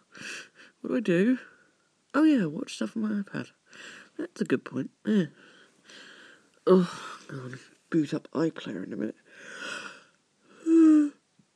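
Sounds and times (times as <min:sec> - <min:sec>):
speech: 0:00.8 - 0:01.5, 0:02.1 - 0:09.9
person yawning: 0:06.7 - 0:07.4, 0:10.6 - 0:11.2.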